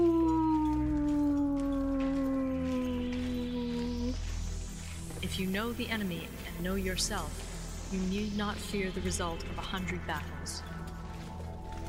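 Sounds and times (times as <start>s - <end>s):
wolf howling: 0.0s - 4.3s
speech: 5.4s - 10.7s.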